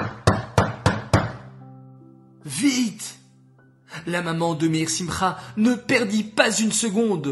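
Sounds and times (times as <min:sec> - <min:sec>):
loud heavy knocking on a house door: 0:00.0 - 0:01.5
speech: 0:02.5 - 0:03.2, 0:04.0 - 0:07.3.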